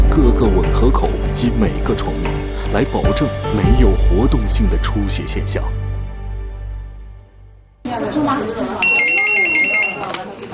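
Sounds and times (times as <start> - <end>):
speech: 0.2 - 5.8
electronic telephone ringing with a warbling trill: 8.8 - 10.2.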